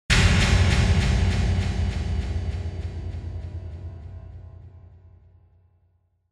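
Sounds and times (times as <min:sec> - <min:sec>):
impact with high delay: 0:00.1 - 0:05.1.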